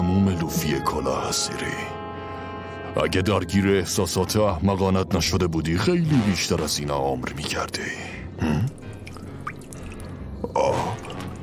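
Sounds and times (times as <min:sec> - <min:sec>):
speech: 0:00.5 - 0:02.0, 0:02.9 - 0:08.7
water spilling and splashing: 0:08.7 - 0:11.4.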